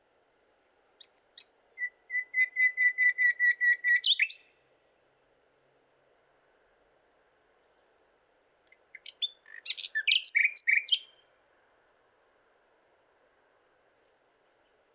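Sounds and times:
common nightingale Luscinia megarhynchos singing: 1.0 - 5.3, 8.6 - 11.4.

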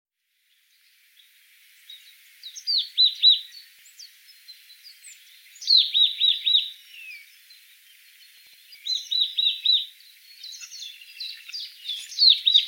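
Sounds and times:
faint steady high hiss: 0.2 - 12.6
Marsh tit Poecile palustris calls: 2.5 - 12.6.

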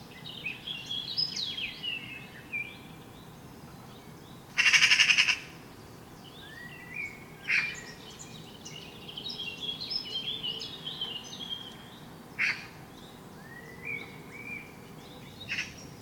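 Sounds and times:
birds whistling and trilling: 0.0 - 16.0
Eurasian magpie (Pica pica) giving short harsh rasping bursts: 4.6 - 5.5, 12.4 - 12.7.

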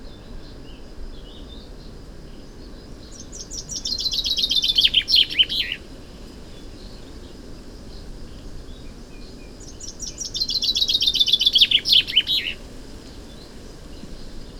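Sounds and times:
common chaffinch Fringilla coelebs song: 2.6 - 8.1, 8.7 - 14.5.

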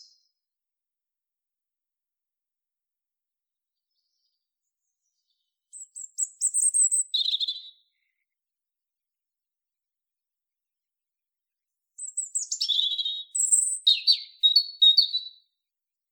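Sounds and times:
European robin Erithacus rubecula song: 3.8 - 8.4, 12.0 - 15.6.

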